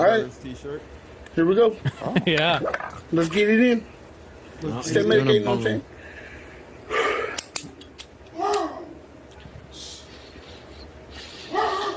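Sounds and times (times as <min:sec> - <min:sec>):
steady noise hum: 0:00.0 - 0:11.9
speech: 0:00.1 - 0:04.0, 0:04.6 - 0:05.9
dog giving short sharp barks: 0:11.5 - 0:11.9.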